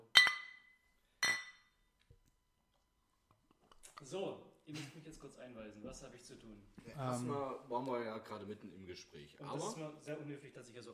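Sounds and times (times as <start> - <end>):
glasses clinking in a toast: 0.0 - 1.8
speech: 4.1 - 10.9.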